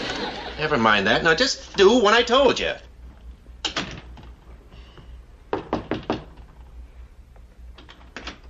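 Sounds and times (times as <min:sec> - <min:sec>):
laughter: 0:00.0 - 0:00.9
speech: 0:00.6 - 0:02.9
sharp knocking on a front door: 0:05.5 - 0:06.4.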